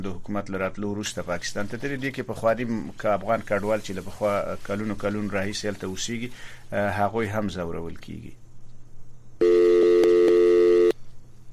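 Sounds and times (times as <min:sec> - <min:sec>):
speech: 0:00.0 - 0:08.4
faint low hum: 0:00.0 - 0:11.5
telephone busy signal after a call drops: 0:09.4 - 0:11.0.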